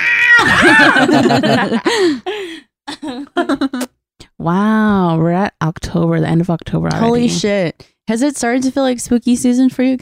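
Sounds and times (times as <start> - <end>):
person imitating a cat meowing: 0.0 - 0.6
laughter: 0.4 - 2.4
speech: 0.8 - 3.8, 4.4 - 10.0.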